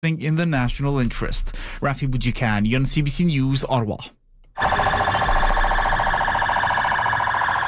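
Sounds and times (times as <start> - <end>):
speech: 0.0 - 4.2
sirens of a military and police convoy in Baghdad Iraq: 4.6 - 7.6.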